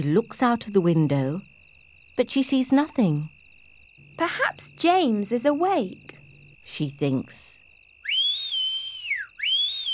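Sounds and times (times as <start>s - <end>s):
speech: 0.0s - 1.5s, 2.2s - 3.4s, 4.2s - 7.6s
person whistling: 8.0s - 9.9s.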